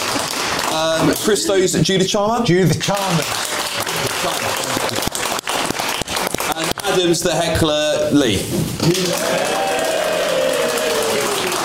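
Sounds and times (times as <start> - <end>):
audience applause for a contestant in a live vote: 0.0 - 1.8, 2.9 - 7.1, 8.8 - 11.6
speech: 0.8 - 3.4, 4.2 - 5.0, 6.9 - 9.6.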